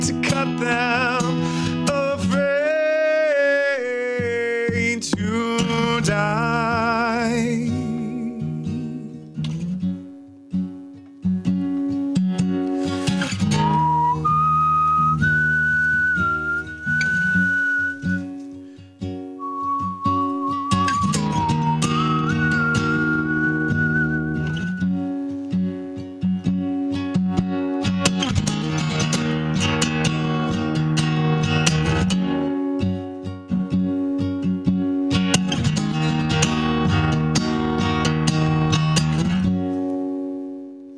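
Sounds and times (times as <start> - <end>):
instrumental music: 0.0 - 40.9
speech: 0.1 - 1.2
person whistling a slow tune: 13.4 - 18.4, 19.4 - 25.0.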